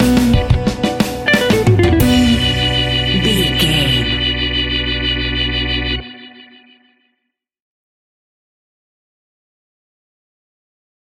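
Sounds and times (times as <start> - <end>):
reggae music stinger: 0.0 - 5.4.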